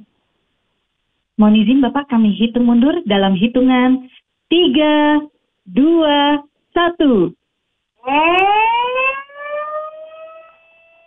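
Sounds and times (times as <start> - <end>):
speech: 1.4 - 7.4, 8.0 - 8.7
siren sounded to mark official logo launch for Indonesia's Independence Day: 8.0 - 11.0.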